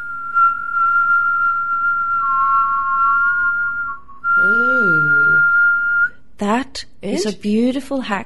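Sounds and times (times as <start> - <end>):
breath whistling in and out through pursed lips: 0.0 - 6.2
short voiced sound: 4.4 - 5.4
speech: 6.4 - 8.2.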